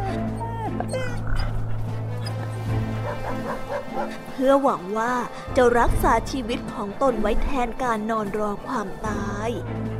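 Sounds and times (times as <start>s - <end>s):
dogs barking: 0.2s - 4.3s
speech: 3.3s - 9.9s.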